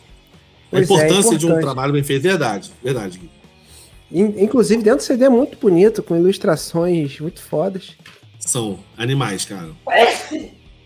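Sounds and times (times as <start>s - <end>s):
speech: 0.7s - 3.4s, 4.1s - 10.6s
person sneezing: 9.9s - 10.5s.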